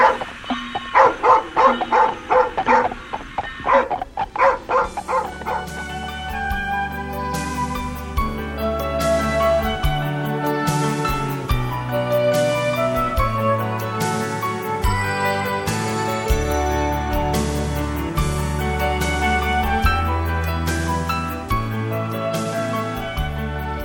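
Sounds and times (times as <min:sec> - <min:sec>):
dog barking in sharp yaps: 0:00.0 - 0:05.8
sustained musical backdrop with steady tones: 0:00.0 - 0:23.8.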